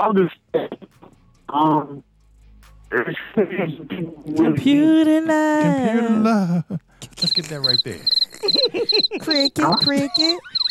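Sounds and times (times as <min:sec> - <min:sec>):
speech: 0:00.0 - 0:00.9, 0:01.5 - 0:02.1, 0:02.9 - 0:10.6
laughter: 0:05.6 - 0:10.6
cricket chirps: 0:07.2 - 0:10.6.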